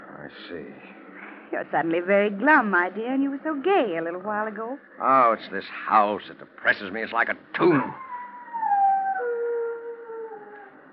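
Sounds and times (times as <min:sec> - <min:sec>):
speech: 0:00.3 - 0:08.0
dog howling in a long wavering mournful note: 0:07.9 - 0:10.9.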